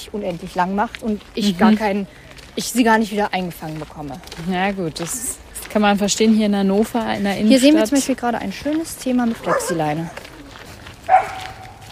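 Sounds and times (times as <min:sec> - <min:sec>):
speech: 0:00.0 - 0:10.2
low murmur of outdoor ambience in Hannover city centre: 0:00.0 - 0:11.8
dog barking in city centre: 0:09.4 - 0:10.1, 0:11.1 - 0:11.8.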